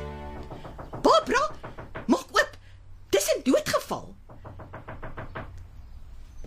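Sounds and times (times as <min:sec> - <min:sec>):
firm knocking on a door: 0:00.2 - 0:02.5, 0:04.2 - 0:05.6.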